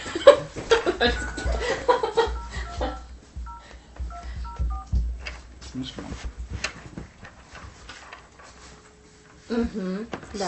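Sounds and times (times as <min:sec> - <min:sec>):
laughter: 0:00.0 - 0:03.1
speech: 0:01.0 - 0:01.8, 0:09.6 - 0:10.4
telephone keypad tones as a number is dialed: 0:01.2 - 0:04.9.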